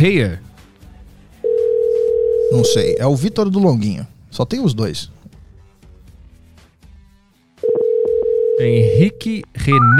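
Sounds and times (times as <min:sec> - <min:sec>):
speech: 0:00.0 - 0:00.5, 0:02.5 - 0:05.2, 0:08.6 - 0:09.9
loud steady telephone tone while a call is being placed: 0:01.5 - 0:03.0, 0:07.6 - 0:09.0.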